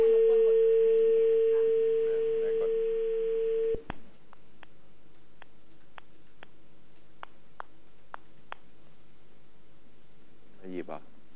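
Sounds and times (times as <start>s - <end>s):
steady single-pitched telephone tone during a call: 0.0s - 3.8s.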